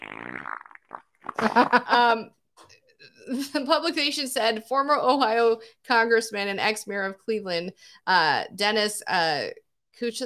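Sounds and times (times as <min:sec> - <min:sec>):
man's voice imitating a loud buzzing fart: 0:00.0 - 0:02.0
speech: 0:01.4 - 0:02.4, 0:03.3 - 0:10.2.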